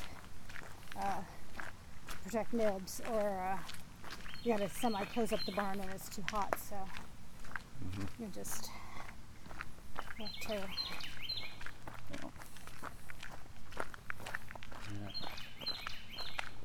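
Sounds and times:
footsteps crunching along outdoors: 0.0s - 16.6s
speech: 2.3s - 3.8s, 4.4s - 7.1s, 7.8s - 8.8s, 10.2s - 11.1s
bird singing, possibly a mockingbird: 4.2s - 6.3s, 10.0s - 11.7s, 14.9s - 16.6s.

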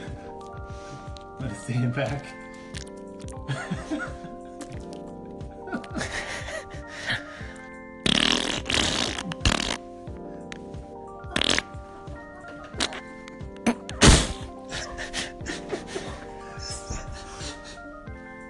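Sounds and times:
speech: 1.4s - 2.8s, 3.5s - 4.4s
person chuckling and laughing: 3.4s - 5.0s, 5.6s - 7.4s, 9.1s - 9.6s, 13.6s - 17.9s
wet fart noises imitated with the mouth: 8.0s - 9.9s, 11.3s - 11.8s, 12.7s - 14.5s.

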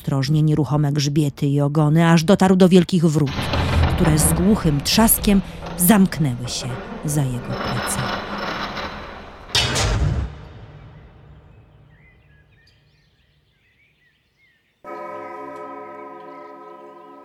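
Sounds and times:
speech: 0.0s - 8.2s
heavy clock strike: 3.2s - 12.3s, 14.9s - 17.2s.

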